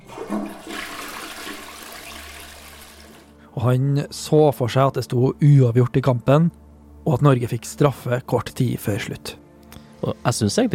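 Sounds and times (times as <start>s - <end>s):
toilet flushing: 0.0s - 3.4s
speech: 3.6s - 9.4s, 10.0s - 10.7s.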